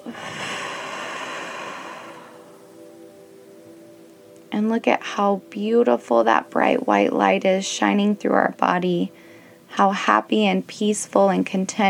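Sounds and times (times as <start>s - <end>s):
long deep exhale: 0.0s - 2.6s
speech: 4.5s - 11.8s.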